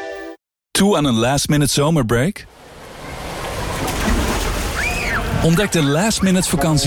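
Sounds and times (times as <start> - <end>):
speech: 0.8 - 2.7, 5.4 - 6.8
water splashing and sloshing from jumping into cooling water: 2.7 - 6.1.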